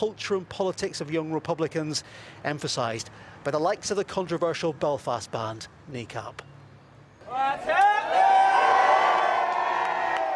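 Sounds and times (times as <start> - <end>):
speech: 0.0 - 6.5
large concert crowd roaring and cheering at a hip-hop concert: 7.2 - 10.3.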